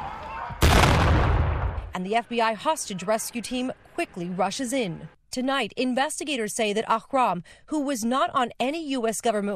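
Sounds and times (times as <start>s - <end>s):
gunshots inside a building: 0.6s - 1.9s
speech: 2.0s - 9.5s.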